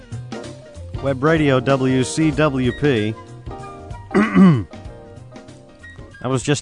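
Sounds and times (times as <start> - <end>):
speech: 1.0 - 3.2, 4.3 - 4.7, 6.2 - 6.6
throat clearing: 4.1 - 4.7.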